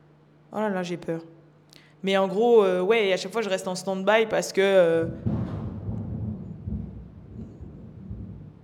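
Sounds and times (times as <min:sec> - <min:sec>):
speech: 0:00.5 - 0:01.4, 0:02.0 - 0:05.3
deep continuous rumble of thunder: 0:05.0 - 0:08.6
window pane rattling from thunder: 0:05.0 - 0:08.6.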